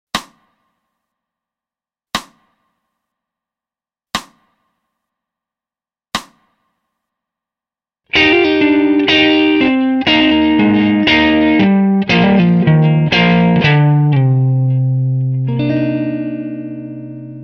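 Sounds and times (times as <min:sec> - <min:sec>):
slow C minor scale rip: 0:08.1 - 0:17.4.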